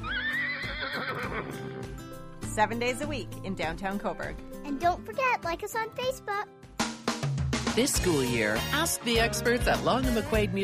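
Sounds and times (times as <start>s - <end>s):
horse neighing: 0.0s - 1.8s
speech: 2.6s - 6.6s, 7.8s - 10.6s.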